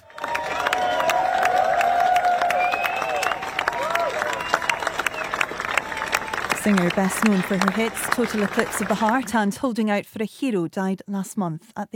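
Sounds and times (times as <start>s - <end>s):
scattered whistles: 0.0s - 6.6s
raised voices: 0.0s - 9.3s
large crowd clapping and cheering outdoors: 0.0s - 9.4s
speech: 6.6s - 11.9s.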